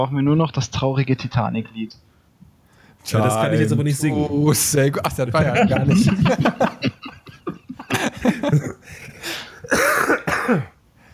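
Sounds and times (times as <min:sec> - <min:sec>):
speech: 0:00.0 - 0:02.1, 0:03.0 - 0:07.2, 0:10.5 - 0:10.7
laughter: 0:05.3 - 0:09.2
person coughing: 0:09.5 - 0:10.8
throat clearing: 0:09.7 - 0:10.8.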